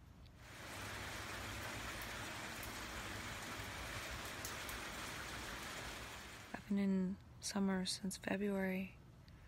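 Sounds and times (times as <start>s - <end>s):
steady rain falling on surfaces: 0.4s - 7.0s
speech: 6.7s - 9.0s.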